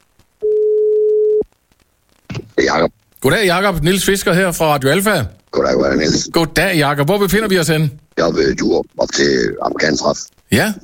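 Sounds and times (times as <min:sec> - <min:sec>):
ringback tone of an outgoing telephone call: 0:00.4 - 0:01.4
speech: 0:02.8 - 0:10.8.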